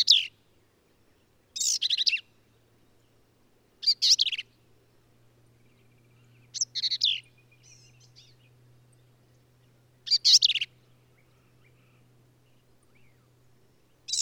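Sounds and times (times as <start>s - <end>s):
male black-capped vireo singing in Texas hill country near Hunt: 0.0s - 0.4s, 1.1s - 2.7s, 3.8s - 4.5s, 5.6s - 14.2s
faint low hum: 0.0s - 14.2s.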